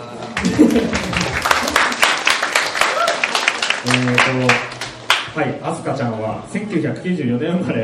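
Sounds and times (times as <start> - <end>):
small audience clapping: 0.2 - 5.4
speech: 0.4 - 1.1, 3.8 - 4.7, 5.3 - 7.8
laughter: 0.4 - 1.3.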